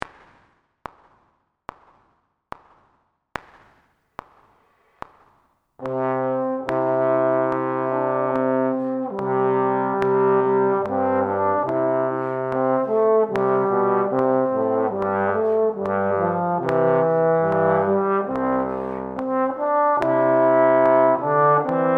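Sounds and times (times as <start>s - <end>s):
trombone in C major: 5.8s - 21.9s.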